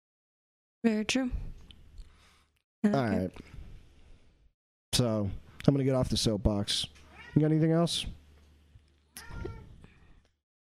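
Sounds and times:
speech: 0.8s - 1.4s, 2.8s - 3.6s, 4.9s - 8.2s
female cat meowing: 7.0s - 7.5s, 9.1s - 9.8s.

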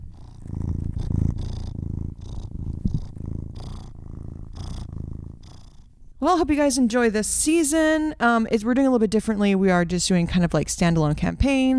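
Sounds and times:
cat purring: 0.0s - 6.7s
speech: 6.2s - 11.7s.

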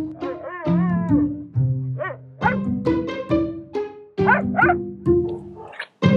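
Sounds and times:
dogs barking and yelping frantically as a cat torments them: 0.1s - 2.7s, 4.2s - 6.0s.

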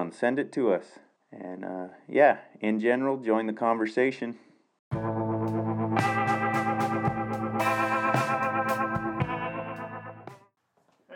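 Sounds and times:
speech: 0.1s - 4.5s
surf-style electric guitar music with twangy effect-laden tone: 4.9s - 10.5s.

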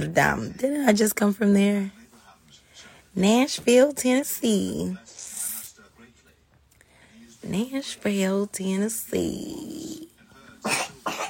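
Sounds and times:
speech: 0.0s - 2.0s, 3.2s - 5.1s, 7.4s - 11.2s
baby coughing: 10.6s - 11.2s.

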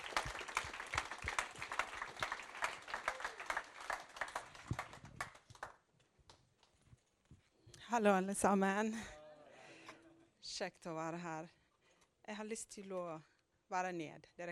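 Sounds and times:
audience clapping: 0.0s - 6.8s
speech: 7.9s - 9.2s, 10.6s - 11.6s, 12.3s - 14.5s.

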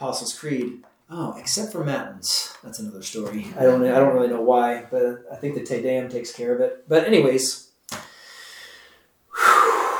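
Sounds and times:
speech: 0.0s - 7.7s
man taking a quick deep breath mid-talk: 8.0s - 9.9s.

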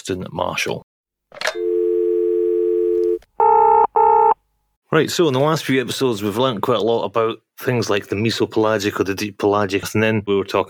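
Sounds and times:
speech: 0.0s - 1.4s, 4.9s - 10.6s
telephone dial tone: 1.5s - 4.4s
telephone line click: 3.0s - 3.6s.

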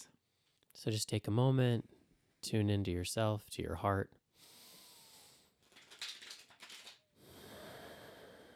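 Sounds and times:
speech: 0.8s - 4.5s
tarot cards being riffle shuffled: 5.6s - 7.0s.

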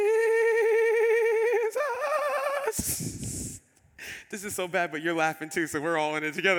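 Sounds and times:
person singing with exaggerated warbling vibrato: 0.0s - 3.7s
speech: 4.3s - 6.5s.

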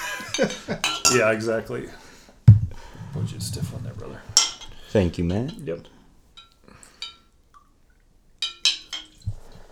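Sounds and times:
whiskey glasses clinking in a holiday toast: 0.0s - 1.5s, 4.3s - 5.8s, 6.4s - 7.4s, 8.4s - 9.5s
speech: 0.4s - 2.0s, 3.1s - 6.0s.

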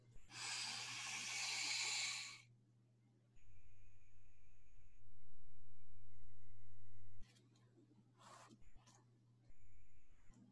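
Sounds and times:
deep inhale through the nose during a guided breathing meditation: 0.3s - 2.5s.

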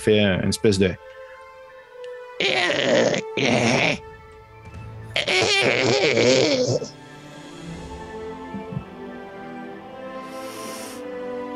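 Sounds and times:
speech: 0.0s - 1.2s, 2.4s - 4.1s, 5.4s - 7.0s
voice mimicking a creature clearing its throat: 2.4s - 4.0s, 5.2s - 7.0s, 8.5s - 8.9s.

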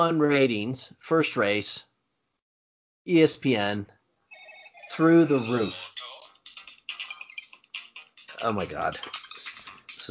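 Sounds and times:
speech: 0.0s - 1.9s, 3.0s - 4.0s, 4.9s - 6.1s, 8.4s - 9.2s
phone ringing in bright electronic bursts: 4.3s - 10.1s.

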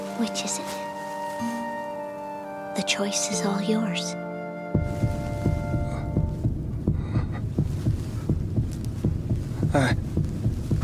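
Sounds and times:
speech: 0.2s - 1.6s, 2.8s - 4.2s, 9.7s - 10.0s
heartbeat thumping: 4.7s - 10.8s
low rumbling hum: 4.8s - 10.8s.

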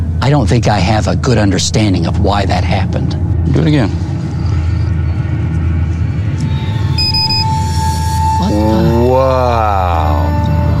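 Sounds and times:
constant low rumble: 0.0s - 10.7s
speech: 0.3s - 4.1s
lightning detector sounding a high electronic tone: 6.5s - 9.3s.

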